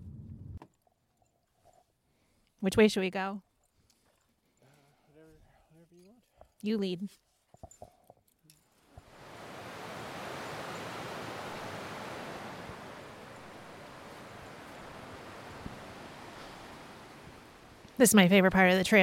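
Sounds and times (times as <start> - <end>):
speech: 2.6 - 3.5, 6.6 - 7.2, 18.0 - 19.0
stream water rushing over rocks: 9.0 - 17.9.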